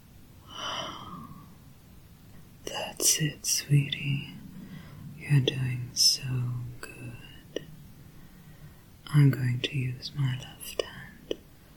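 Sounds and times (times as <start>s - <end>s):
deep human breath in and out: 0.4s - 1.6s, 4.4s - 5.2s, 8.0s - 9.0s
speech: 3.0s - 4.4s, 5.3s - 7.2s, 9.1s - 10.9s.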